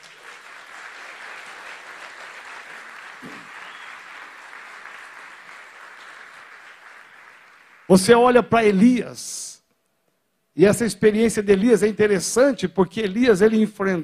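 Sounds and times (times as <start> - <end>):
large church audience clapping: 0.0 - 8.8
speech: 3.2 - 3.5, 7.9 - 9.5, 10.6 - 14.0.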